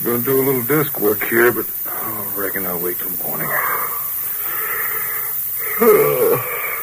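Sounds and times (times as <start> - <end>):
speech: 0.0 - 1.8, 2.4 - 3.7, 5.8 - 6.5
faint hiss: 0.0 - 6.8
person yawning: 5.6 - 6.8.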